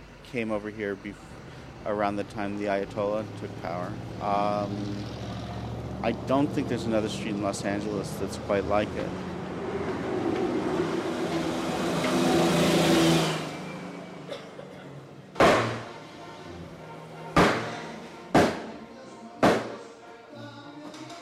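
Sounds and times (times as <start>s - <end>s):
street traffic noise: 0.0s - 20.0s
speech: 0.3s - 5.2s, 6.0s - 10.0s
cleaver chopping goat meat with heavy thumps: 17.4s - 17.7s.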